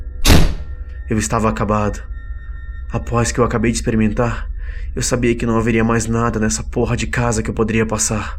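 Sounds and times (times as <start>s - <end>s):
door slamming shut: 0.3s - 0.8s
low steady hum: 0.3s - 8.3s
speech: 1.1s - 2.1s, 2.9s - 8.3s.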